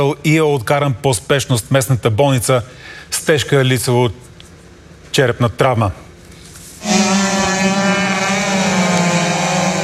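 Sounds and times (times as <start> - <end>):
speech: 0.0 - 4.2, 5.2 - 6.0
racing powerboat engines roaring on water: 6.8 - 9.8.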